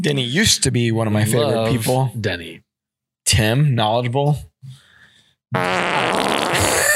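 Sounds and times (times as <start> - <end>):
speech: 0.0 - 2.6, 3.2 - 4.5, 5.5 - 6.4
long buzzy fart: 5.5 - 6.9.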